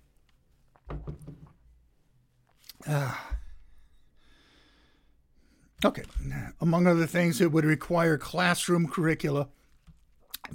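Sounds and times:
speech: 2.9s - 3.3s, 5.8s - 9.6s
breathy satisfied exhale after drinking juice: 4.2s - 5.7s
sipping grape juice: 10.2s - 10.5s.

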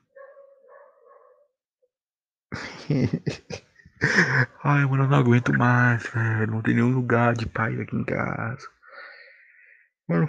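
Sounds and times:
dogs barking: 0.0s - 1.5s
laughter: 2.6s - 7.5s
speech: 2.9s - 8.8s, 10.1s - 10.2s.

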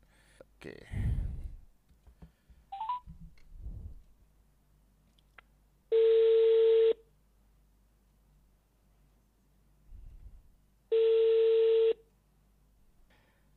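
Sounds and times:
speech: 0.6s - 1.1s
phone ringback tones on a phone line: 2.7s - 3.0s, 5.9s - 7.0s, 10.9s - 12.0s
phone dialing beeps: 2.8s - 3.0s.

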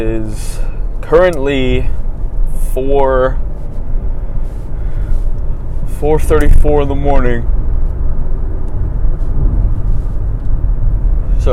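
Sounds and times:
speech: 0.0s - 2.0s, 2.6s - 3.4s, 6.0s - 7.6s
car engine and road noise heard from inside the cabin: 0.0s - 11.5s.

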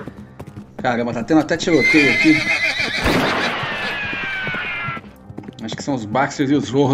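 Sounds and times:
horse hoof clops thudding: 0.0s - 6.9s
speech: 0.8s - 3.3s, 5.8s - 6.9s
agitated horse neighing and whinnying: 1.2s - 5.1s.

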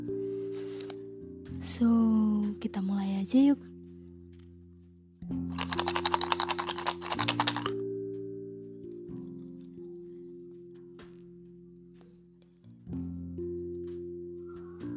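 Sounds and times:
soft steady music bed: 0.0s - 14.9s
speech: 1.6s - 3.8s
hands rummaging through paper slips in a box: 5.6s - 7.7s.

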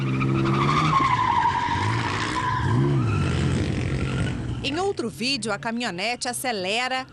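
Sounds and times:
car tires squealing as a car spins on a deserted street in Brazil: 0.0s - 4.6s
car engine rumbling: 0.0s - 6.2s
speech: 5.0s - 7.1s.

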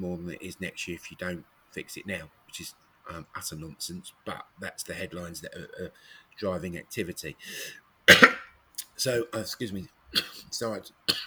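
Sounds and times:
speech: 0.0s - 8.4s, 9.0s - 11.2s
person coughing sharply: 7.5s - 8.4s, 10.2s - 10.5s, 11.1s - 11.2s.

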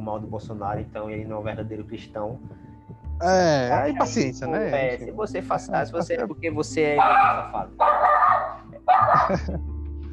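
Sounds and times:
speech: 0.1s - 2.6s, 3.2s - 8.1s, 8.9s - 9.7s
laughter: 3.2s - 4.8s, 5.5s - 7.4s, 8.9s - 9.6s
dog giving drawn-out whiny barks: 7.0s - 9.4s.

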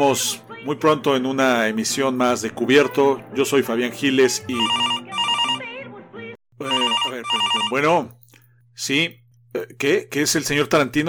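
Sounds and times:
speech: 0.0s - 5.0s, 7.7s - 8.2s, 8.8s - 11.0s
telephone ringing with electronic melodic pattern: 4.5s - 5.7s, 6.6s - 8.1s.

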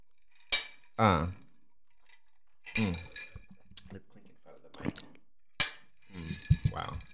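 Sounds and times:
glasses clinking in a toast: 2.0s - 3.7s, 5.6s - 7.1s.

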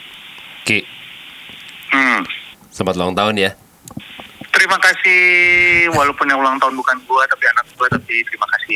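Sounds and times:
speech: 0.7s - 0.9s, 2.8s - 3.6s, 4.7s - 8.7s
buzzy telephone ringback tones of a call ringing out: 5.1s - 7.1s.

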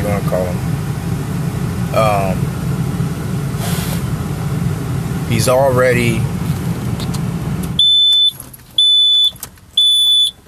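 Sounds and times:
low rumbling noise: 0.0s - 7.8s
speech: 5.3s - 6.4s
high-pitched electronic alarm beeps: 7.8s - 10.4s.

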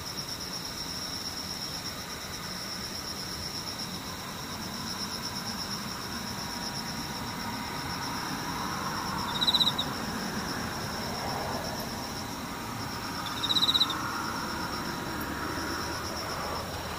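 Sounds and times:
insects droning steadily high and thin: 0.0s - 16.9s.

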